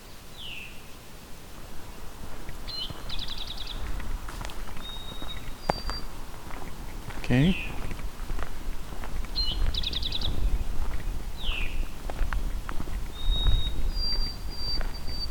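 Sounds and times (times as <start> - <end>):
white-throated sparrow singing whistled notes: 0.0 - 0.9, 2.7 - 4.0, 4.6 - 6.2, 9.3 - 12.0, 13.1 - 15.2
bird chirps: 0.0 - 1.0, 2.6 - 4.0, 4.6 - 7.9, 9.2 - 12.0, 13.0 - 15.2
scuffing footsteps: 1.6 - 15.2
speech: 7.3 - 7.8.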